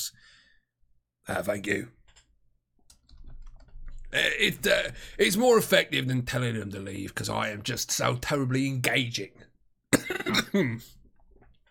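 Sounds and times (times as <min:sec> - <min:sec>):
speech: 0:01.3 - 0:02.0, 0:04.1 - 0:09.5, 0:10.1 - 0:11.0
man coughing: 0:09.9 - 0:11.0.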